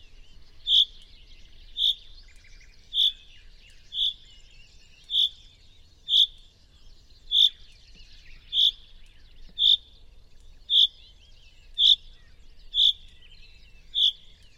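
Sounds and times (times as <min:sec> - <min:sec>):
common chaffinch Fringilla coelebs calling: 0:00.0 - 0:04.4, 0:05.0 - 0:05.5, 0:07.2 - 0:09.9, 0:10.7 - 0:11.1, 0:11.7 - 0:14.5.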